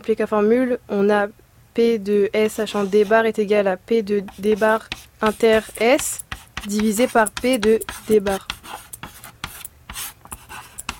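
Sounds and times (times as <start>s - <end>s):
speech: 0.0s - 8.8s
chalk scratching and squeaking across a blackboard: 2.6s - 3.2s, 4.3s - 10.9s.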